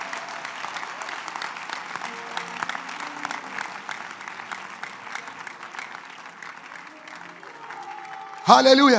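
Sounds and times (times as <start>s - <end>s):
congregation applauding: 0.0s - 8.9s
speech: 8.5s - 8.9s.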